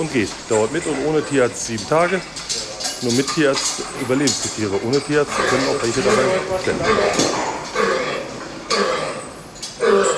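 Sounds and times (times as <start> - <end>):
speech: 0.0 - 7.5
low hum: 0.0 - 10.1
pig's deep dry non-productive cough: 5.2 - 10.1.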